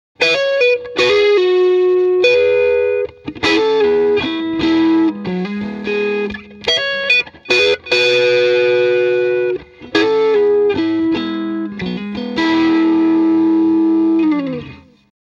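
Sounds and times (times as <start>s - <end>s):
electric guitar neck pickup through valve amplifier: 0.2s - 15.1s.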